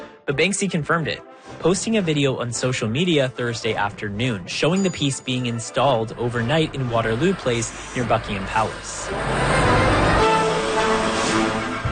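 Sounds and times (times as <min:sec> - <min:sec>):
speech: 0:00.3 - 0:09.6
heavy vehicle engine droning low: 0:05.9 - 0:11.9
loud street traffic rumbling: 0:06.0 - 0:11.9
brief horn-like tone: 0:09.1 - 0:11.9.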